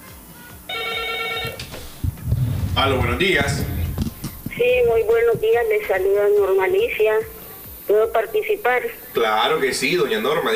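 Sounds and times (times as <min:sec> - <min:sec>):
telephone ringing with an incoming call: 0:00.7 - 0:01.8
speech: 0:02.8 - 0:03.8, 0:04.6 - 0:10.5.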